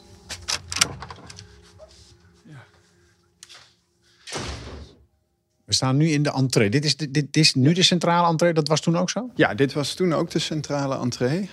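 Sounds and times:
school door opened with a rattle of clicks and knocks: 0.4s - 1.5s
school door shut with a heavy thud: 4.3s - 5.0s
speech: 5.8s - 11.5s.

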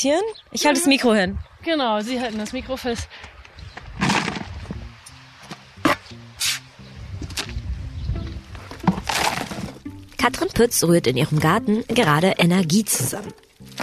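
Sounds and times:
speech: 0.0s - 3.4s, 10.2s - 13.5s
shovelfuls of wet horse manure being scooped and tipped in a garden: 5.9s - 6.6s, 8.9s - 9.8s, 12.8s - 13.8s.

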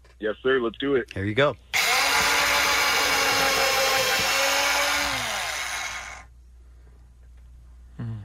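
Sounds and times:
speech: 0.2s - 1.7s
power drill whirring: 1.8s - 6.3s.

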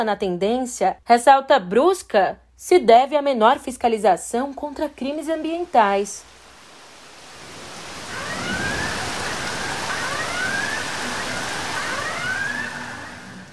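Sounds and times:
speech: 0.0s - 6.4s
steady roar of heavy rain: 5.8s - 13.5s
Civil Defense warning sirens wailing in Petrópolis during a storm: 7.5s - 13.5s.

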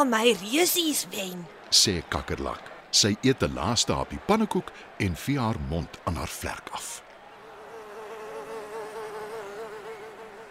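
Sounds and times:
speech: 0.0s - 7.0s
dragonfly, mosquito and bee wings buzzing: 7.6s - 10.4s.

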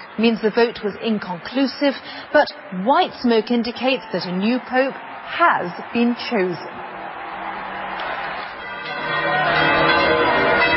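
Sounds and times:
speech: 0.2s - 6.8s
large outdoor crowd roaring: 3.6s - 10.7s
St. Peter's Basilica church bells ringing: 8.5s - 10.7s.

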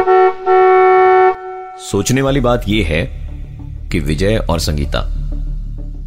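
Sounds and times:
broken-down overheated car horn honking on a deserted national highway: 0.0s - 2.0s
speech: 1.8s - 5.2s.

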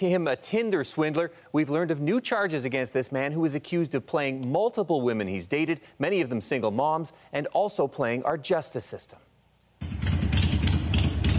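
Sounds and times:
speech: 0.0s - 9.3s
motorcycle engine idling: 9.8s - 11.3s.

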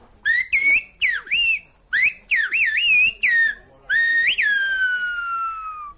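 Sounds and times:
whistled phrases in Silbo Gomero whistled language on La Gomera: 0.2s - 5.9s.

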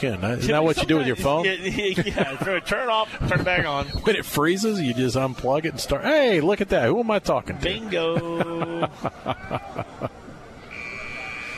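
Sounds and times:
speech: 0.0s - 10.1s
laughter: 0.1s - 4.1s, 7.7s - 10.4s
buzzer sounding at a high school football game: 10.7s - 11.5s.

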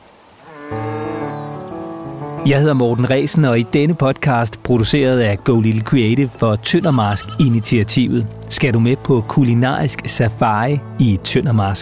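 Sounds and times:
lambs bleating among grazing cows in pasture: 0.4s - 1.7s, 2.5s - 3.6s, 6.1s - 9.6s
speech: 2.4s - 11.8s.

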